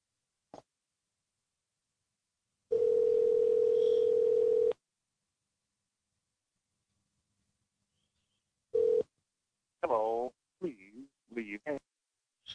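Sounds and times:
telephone dial tone during outgoing call: 2.7 - 4.8, 8.8 - 9.1
person speaking: 9.8 - 11.9.

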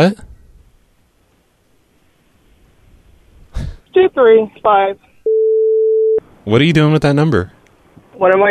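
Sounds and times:
speech: 0.0 - 0.3, 4.0 - 5.1, 6.4 - 7.6, 8.2 - 8.4
telephone busy tone after dialing: 5.3 - 6.2.

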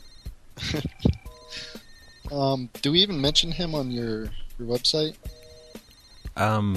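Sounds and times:
telephone ringing from an incoming call: 0.0 - 4.3, 5.1 - 6.4
speech: 0.7 - 1.0, 2.3 - 5.4, 6.4 - 6.7.

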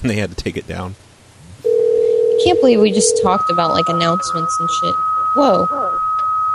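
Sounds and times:
speech: 0.0 - 1.1, 2.4 - 6.0
faint low hum: 0.0 - 6.4
steady electronic beep on a phone line after calling a theater: 1.7 - 6.4.

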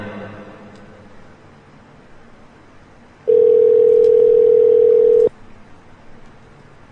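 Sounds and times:
telephone line tone while placing a call: 3.3 - 5.3.

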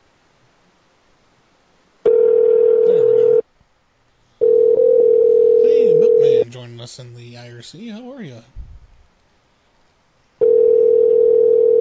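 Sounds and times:
telephone line ringing tone: 2.1 - 3.4, 4.4 - 6.4, 10.4 - 11.8
speech: 6.8 - 8.6.

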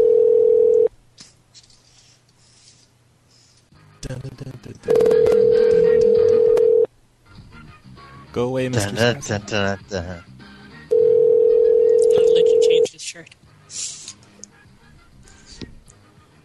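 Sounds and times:
steady telephone dial tone: 0.0 - 0.9, 4.9 - 6.9, 10.9 - 12.7
speech: 8.4 - 10.3.

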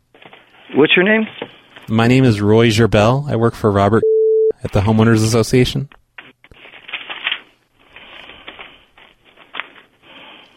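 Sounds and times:
paper rustling and crinkling: 0.1 - 1.9, 6.2 - 10.5
speech: 0.7 - 6.0.

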